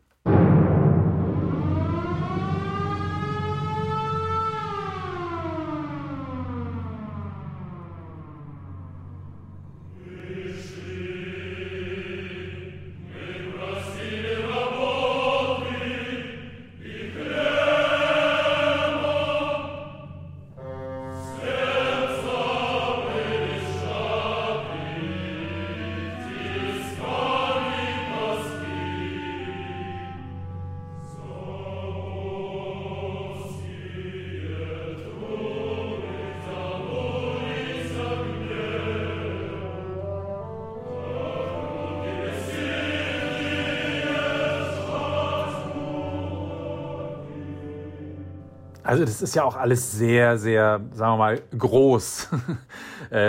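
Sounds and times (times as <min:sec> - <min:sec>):
blaring orchestral propaganda-style music with simple repeated chords: 0:00.3 - 0:50.0
siren-like wail: 0:01.1 - 0:11.8, 0:16.8 - 0:47.9
speech: 0:48.9 - 0:53.2
laughter: 0:52.1 - 0:53.2.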